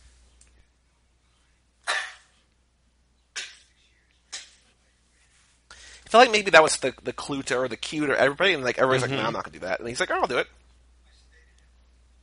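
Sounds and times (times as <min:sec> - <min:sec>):
sneeze: 0:01.8 - 0:02.4, 0:03.4 - 0:03.7
speech: 0:06.1 - 0:10.6.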